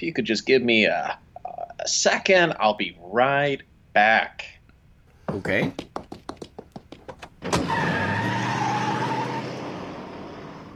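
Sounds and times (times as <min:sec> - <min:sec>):
speech: 0:00.0 - 0:04.6, 0:05.3 - 0:06.0
car tires screeching in a skid: 0:07.0 - 0:10.7
car engine sputtering and revving: 0:07.2 - 0:10.7.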